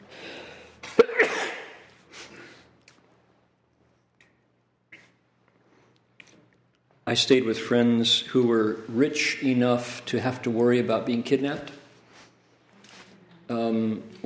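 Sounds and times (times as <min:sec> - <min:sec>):
person sneezing: 0:00.9 - 0:02.7
speech: 0:07.1 - 0:11.8.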